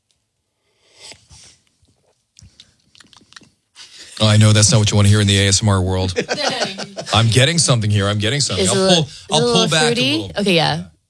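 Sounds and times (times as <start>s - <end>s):
slurping sips of very hot coffee with creamer: 0.8s - 4.0s
speech: 4.2s - 10.9s
laughter: 6.0s - 10.2s.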